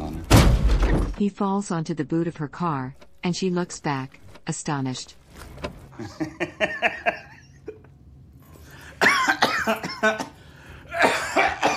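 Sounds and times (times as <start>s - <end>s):
speech: 1.2s - 7.2s, 9.6s - 10.4s
laughter: 5.9s - 7.9s
man coughing into a handkerchief: 9.0s - 11.7s.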